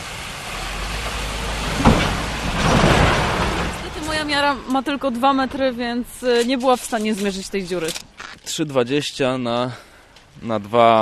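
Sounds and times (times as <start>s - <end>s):
heavy truck driving past on road: 0.0s - 5.9s
speech: 4.3s - 10.9s.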